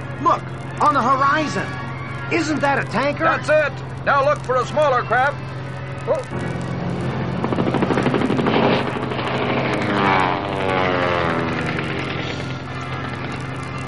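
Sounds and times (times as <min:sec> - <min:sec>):
aircraft engine drone: 0:00.0 - 0:13.8
speech: 0:00.2 - 0:06.6
machine-gun fire from a plane strafing a helicopter over water: 0:06.3 - 0:13.8.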